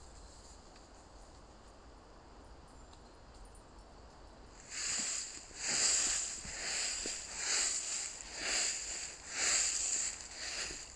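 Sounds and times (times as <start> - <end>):
footsteps rustling through dry fallen leaves in a forest: 4.6 - 10.9.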